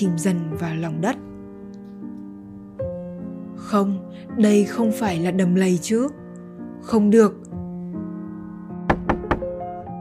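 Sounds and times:
speech: 0:00.0 - 0:01.3, 0:03.7 - 0:06.2, 0:06.8 - 0:07.4
knocking on a bathroom door: 0:08.9 - 0:09.6.

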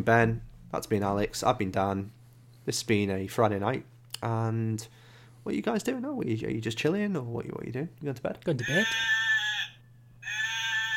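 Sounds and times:
speech: 0:00.0 - 0:09.2
person imitating sheep bleats: 0:08.6 - 0:10.9.

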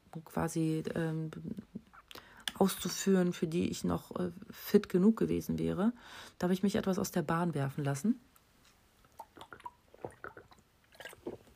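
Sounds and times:
speech: 0:00.1 - 0:01.7, 0:02.6 - 0:08.3
quiet sips and swallows of water: 0:09.0 - 0:11.5.

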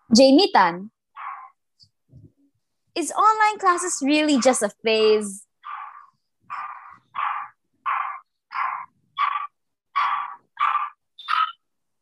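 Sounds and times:
speech: 0:00.1 - 0:00.9, 0:03.0 - 0:05.5
dog barking: 0:05.6 - 0:11.6.

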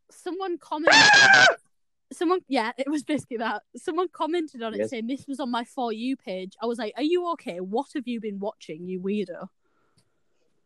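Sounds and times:
speech: 0:00.2 - 0:09.6
person imitating a screaming sound effect: 0:00.8 - 0:01.6.

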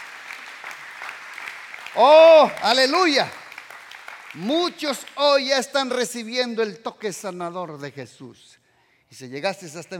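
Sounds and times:
crowd clapping: 0:00.0 - 0:06.0
speech: 0:02.0 - 0:03.4, 0:04.4 - 0:09.9.

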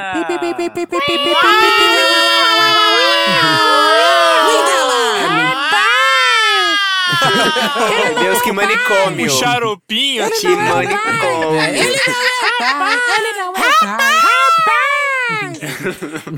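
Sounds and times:
speech: 0:00.0 - 0:04.0, 0:07.1 - 0:16.3
laughter: 0:00.0 - 0:09.7, 0:10.3 - 0:16.3
several voices wailing in imitation of a siren: 0:01.0 - 0:09.1.

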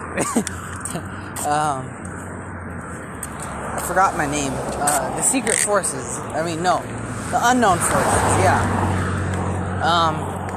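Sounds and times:
outdoor traffic rumbling: 0:00.0 - 0:10.5
speech: 0:00.2 - 0:02.1, 0:03.9 - 0:09.0, 0:09.8 - 0:10.3
car passing by with a whoosh: 0:02.8 - 0:10.5.

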